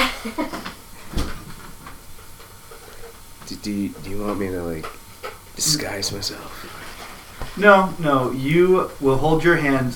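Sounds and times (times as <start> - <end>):
soft hiss: 0.0 - 9.9
speech: 0.2 - 0.6, 3.6 - 5.0, 5.6 - 6.8, 7.6 - 9.9
front door opening: 1.0 - 4.5
front door sharp thud: 1.1 - 2.0.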